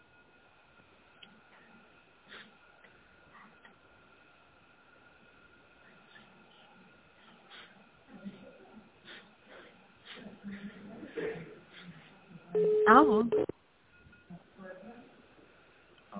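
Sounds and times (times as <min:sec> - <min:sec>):
touch-tone dialing of an office extension number on a telephone: 0:12.6 - 0:13.5.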